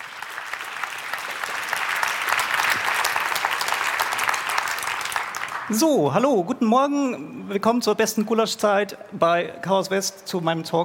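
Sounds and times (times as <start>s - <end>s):
room full of people applauding: 0.0s - 5.8s
speech: 5.7s - 10.8s.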